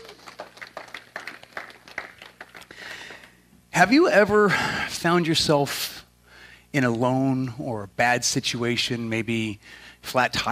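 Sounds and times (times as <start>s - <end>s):
crowd applauding for the worship team: 0.0s - 3.4s
speech: 3.8s - 6.0s, 6.8s - 10.4s.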